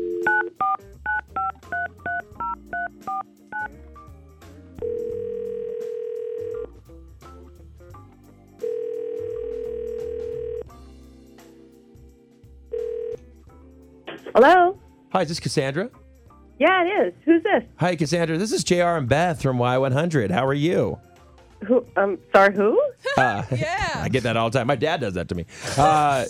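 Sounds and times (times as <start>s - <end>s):
telephone ringback tone: 0.0s - 3.7s, 4.8s - 6.6s, 8.6s - 10.7s, 12.7s - 13.2s
speech: 14.4s - 16.0s, 16.6s - 26.2s
laughter: 23.0s - 24.3s, 25.6s - 26.2s.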